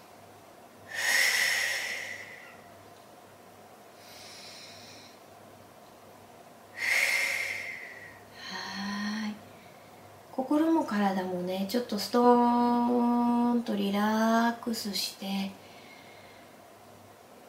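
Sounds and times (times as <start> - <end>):
slow relaxation breathing in through the nose and out through the mouth: 0.8 - 2.6, 3.9 - 5.3, 6.7 - 8.9, 15.6 - 16.6
speech: 10.5 - 15.6.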